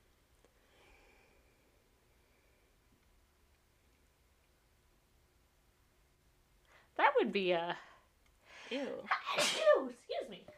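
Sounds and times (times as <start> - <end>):
speech: 7.2 - 7.9, 8.7 - 10.5
loud sneeze: 9.1 - 9.9.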